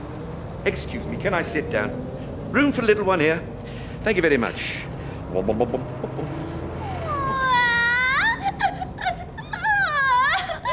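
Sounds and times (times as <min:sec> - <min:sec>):
speech: 0:00.6 - 0:06.6
little girl crying in wavering wails: 0:06.9 - 0:10.7.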